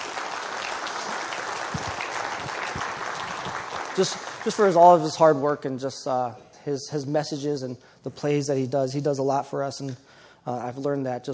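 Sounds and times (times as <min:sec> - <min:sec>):
crowd applauding steadily: 0:00.0 - 0:05.1
speech: 0:04.0 - 0:11.3.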